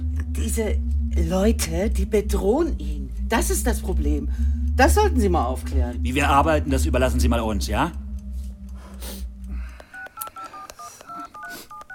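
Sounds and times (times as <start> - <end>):
low rumbling hum: 0.0 - 10.4
speech: 0.5 - 8.0
touch-tone beeps of a telephone number being keyed in: 9.7 - 11.9.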